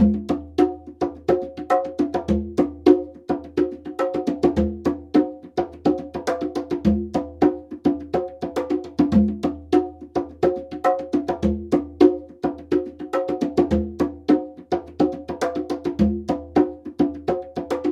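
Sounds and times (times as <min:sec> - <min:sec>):
conga drumming: 0:00.0 - 0:17.9.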